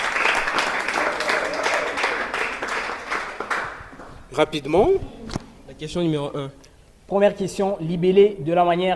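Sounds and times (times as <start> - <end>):
room full of people applauding: 0.0 - 4.2
speech: 4.4 - 8.9.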